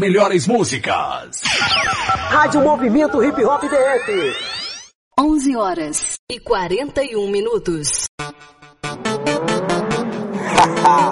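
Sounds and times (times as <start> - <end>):
speech: 0.0 - 8.6
motorcycle engine revving: 8.8 - 11.0.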